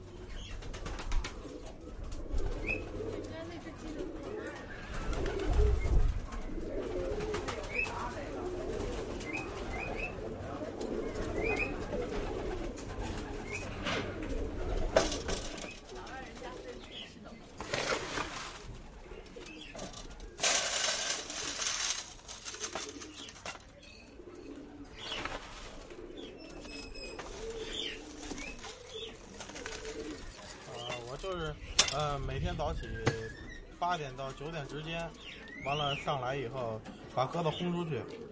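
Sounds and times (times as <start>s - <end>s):
pigeons cooing: 0.0s - 38.3s
murmur of voices: 6.8s - 17.6s
rustling: 15.0s - 32.0s.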